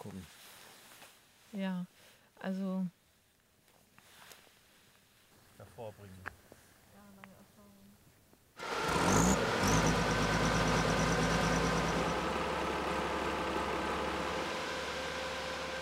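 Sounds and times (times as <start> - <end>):
speech: 0.0 - 0.6, 1.5 - 3.0, 5.6 - 6.4
four-ton snow groomer engine running in a nature park: 8.6 - 15.8.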